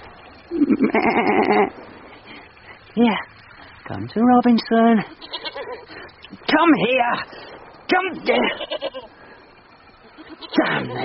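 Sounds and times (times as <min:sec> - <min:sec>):
goat bleating: 0:00.5 - 0:01.8, 0:05.0 - 0:06.0, 0:08.2 - 0:09.2, 0:10.0 - 0:11.0
speech: 0:00.5 - 0:01.8, 0:03.0 - 0:03.3, 0:03.9 - 0:05.3, 0:06.5 - 0:09.2, 0:10.5 - 0:11.0.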